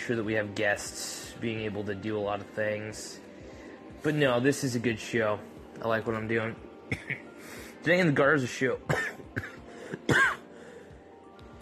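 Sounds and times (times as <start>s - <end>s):
speech: 0.0s - 3.3s, 4.0s - 9.5s
throat clearing: 6.9s - 7.2s, 8.9s - 10.4s
person coughing: 6.9s - 7.3s, 8.9s - 10.4s.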